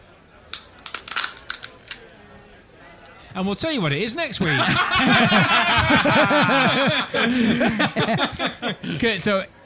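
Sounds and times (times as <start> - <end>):
walnut cracking in a nutcracker: 0.5 - 2.6
speech: 3.3 - 9.6
laughter: 4.4 - 9.2.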